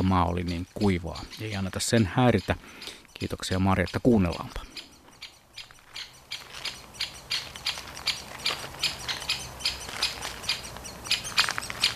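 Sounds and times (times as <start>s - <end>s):
speech: 0.0s - 4.8s
Great spotted woodpecker nestlings chirping: 0.0s - 11.9s
adult great spotted woodpecker alarm calls: 0.0s - 11.9s
faint great spotted woodpecker drumming: 0.0s - 11.9s.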